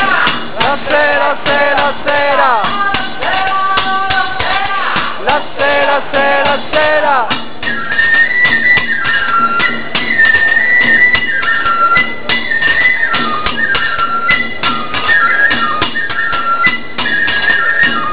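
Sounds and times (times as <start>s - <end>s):
flute at a banquet: 0.0s - 5.4s, 6.2s - 18.1s.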